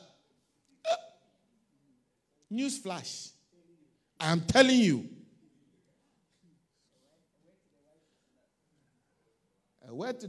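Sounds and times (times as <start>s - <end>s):
person hiccuping: 0.8s - 1.2s
speech: 2.5s - 3.4s, 4.2s - 5.2s, 9.9s - 10.2s.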